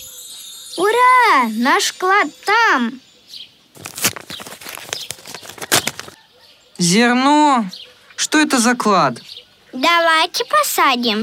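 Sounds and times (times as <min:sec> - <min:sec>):
speech: 0:00.8 - 0:03.1, 0:06.8 - 0:11.2
footsteps walking at a steady pace: 0:03.7 - 0:06.2.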